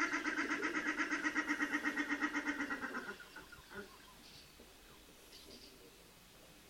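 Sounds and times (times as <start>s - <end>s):
common shelduck calling: 0.0s - 4.0s.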